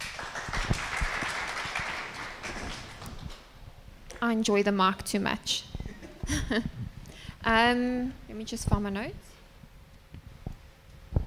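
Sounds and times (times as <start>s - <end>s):
audience applauding: 0.0s - 3.4s
speech: 4.2s - 5.7s, 6.3s - 6.8s, 7.4s - 9.2s.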